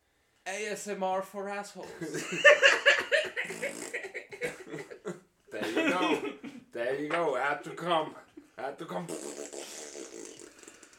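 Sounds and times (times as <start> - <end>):
speech: 0.5 - 3.9, 6.8 - 9.6
laughter: 1.9 - 8.3
long raspy fart: 3.4 - 4.1, 9.0 - 10.9.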